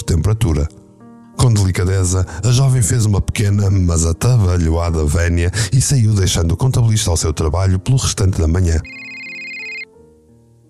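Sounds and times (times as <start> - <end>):
speech: 0.3 - 0.8, 1.4 - 9.0
mobile phone ringtone: 8.8 - 9.9.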